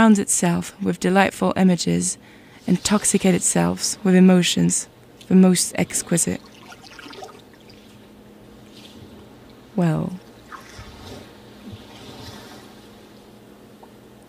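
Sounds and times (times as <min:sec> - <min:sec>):
speech: 0:00.0 - 0:06.6, 0:09.8 - 0:10.2
soft steady wash of sea water: 0:05.2 - 0:13.6.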